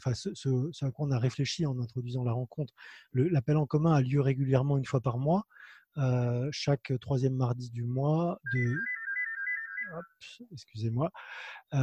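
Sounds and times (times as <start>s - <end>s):
speech: 0.0s - 8.9s, 9.9s - 11.8s
warbling electronic phone ringtone: 8.5s - 10.2s.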